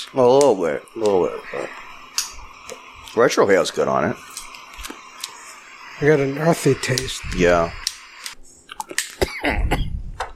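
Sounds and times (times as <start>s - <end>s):
speech: 0.1s - 1.8s, 2.7s - 4.3s, 6.0s - 7.8s, 8.9s - 9.8s
man coughing with throaty hacks: 9.2s - 10.0s.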